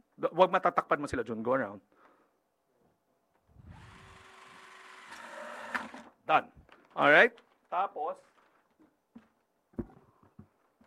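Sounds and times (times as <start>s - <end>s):
speech: 0.3s - 2.0s, 6.3s - 8.3s
power drill whirring with a high motor whine: 3.5s - 6.2s.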